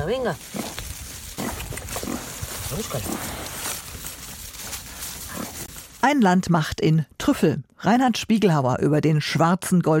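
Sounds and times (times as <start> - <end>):
pig grunting and snuffling: 0.0 - 4.1, 4.8 - 5.8
steady outdoor noise: 0.0 - 9.9
speech: 0.1 - 0.7, 2.7 - 3.6, 6.0 - 9.9.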